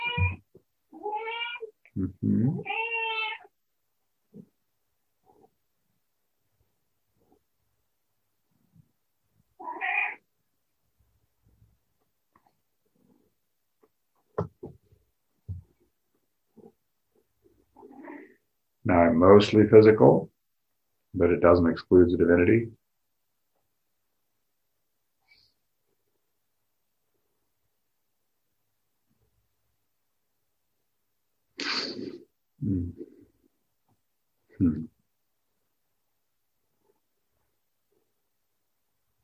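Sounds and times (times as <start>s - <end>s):
cat meowing: 0.0s - 1.7s, 2.6s - 3.5s, 9.6s - 10.2s
speech: 2.0s - 2.8s, 19.2s - 20.3s, 21.2s - 22.8s.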